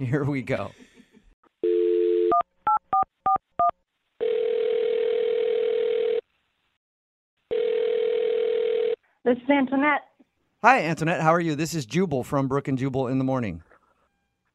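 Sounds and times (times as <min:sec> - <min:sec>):
speech: 0:00.0 - 0:00.8, 0:09.3 - 0:13.7
telephone dial tone: 0:01.6 - 0:02.4, 0:04.2 - 0:06.2, 0:07.5 - 0:09.0.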